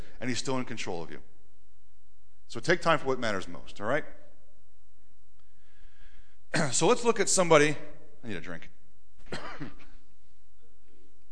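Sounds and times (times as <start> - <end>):
speech: 0.2 - 1.3, 2.5 - 4.2, 6.5 - 9.8
single rough raspy cough: 9.2 - 10.0.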